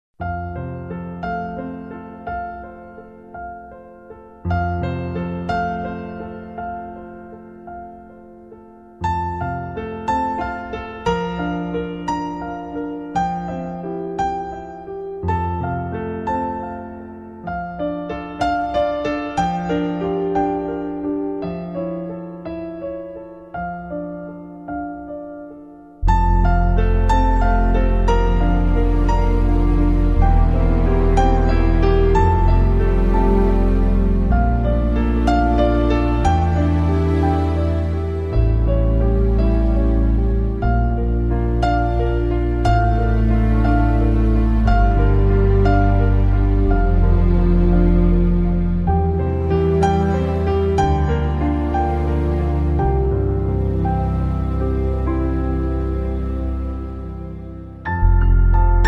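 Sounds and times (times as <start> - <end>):
live piano playing at a reception: 0.2 - 58.8.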